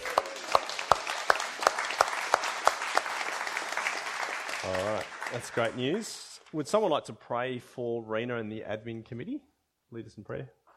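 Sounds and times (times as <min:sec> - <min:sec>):
small group clapping: 0:00.0 - 0:06.6
speech: 0:04.6 - 0:10.6.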